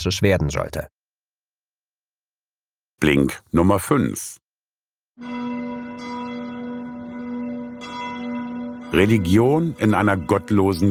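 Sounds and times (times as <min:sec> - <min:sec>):
speech: 0:00.0 - 0:01.0, 0:03.0 - 0:04.4, 0:05.2 - 0:05.8, 0:08.9 - 0:10.8
church bells ringing: 0:05.2 - 0:10.8.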